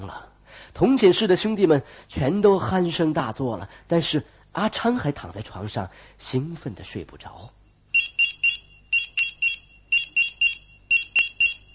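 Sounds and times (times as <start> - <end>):
speech: 0.1 - 7.6
pager beeping: 7.9 - 11.7.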